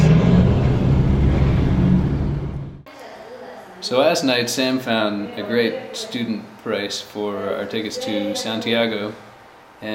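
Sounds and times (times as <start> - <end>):
car engine rumble driving along a street: 0.0 - 2.9
road noise: 0.0 - 2.9
speech: 3.8 - 9.9.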